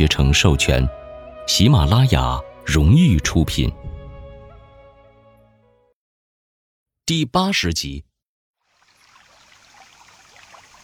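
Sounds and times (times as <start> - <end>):
speech: 0.0 - 3.8, 7.1 - 8.1
water trickling in a forest stream: 8.6 - 10.8.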